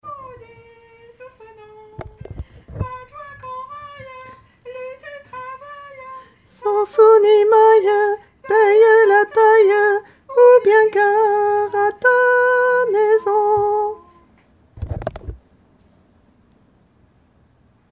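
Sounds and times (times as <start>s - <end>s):
tenor singing: 0.0s - 14.3s.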